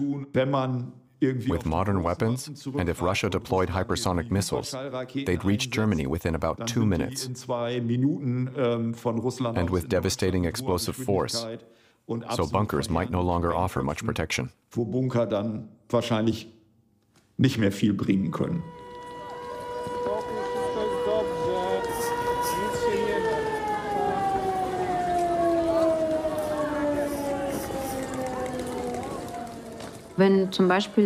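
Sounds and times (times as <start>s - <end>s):
speech: 0.0s - 16.6s, 17.4s - 18.8s, 30.2s - 31.0s
civil defense air raid siren wailing: 18.4s - 31.0s.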